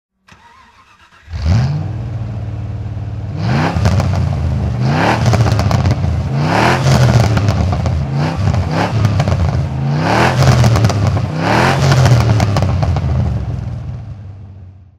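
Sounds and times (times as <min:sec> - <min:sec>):
1993 Morgan Plus 8 3.9 litre engine throttle: 0:00.2 - 0:14.9.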